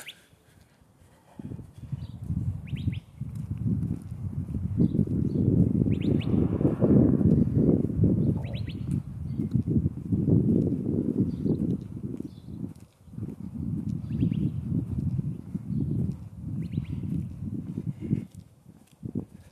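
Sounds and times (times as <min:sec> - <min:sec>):
birds chirping outdoors: 0:00.0 - 0:00.4, 0:02.0 - 0:03.2, 0:04.8 - 0:06.4, 0:08.2 - 0:09.5, 0:14.0 - 0:14.6
steady low rumble of wind-like outdoor noise: 0:00.9 - 0:19.5.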